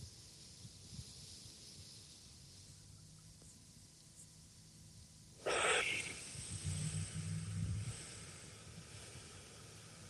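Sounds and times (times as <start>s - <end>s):
slow deep inhale and exhale: 5.4s - 10.0s.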